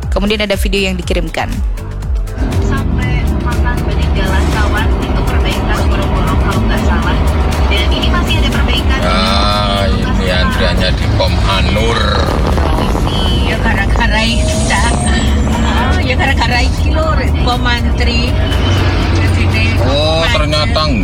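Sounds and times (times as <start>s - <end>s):
congested road traffic with cars and buses idling: 0.0s - 21.0s
speech: 0.2s - 1.8s, 3.5s - 15.3s, 16.1s - 18.9s, 19.8s - 21.0s.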